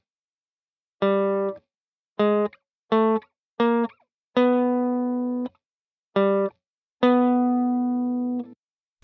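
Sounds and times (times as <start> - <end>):
plucked guitar notes on the fourth string at the fifth fret: 1.0 - 5.6, 6.2 - 8.5.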